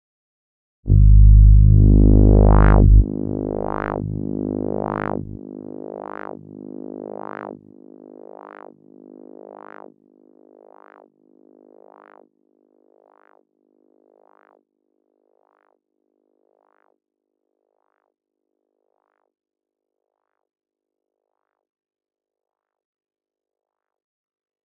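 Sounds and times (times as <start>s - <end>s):
Pro-One synthesizer filter sweep: 0.9s - 7.6s.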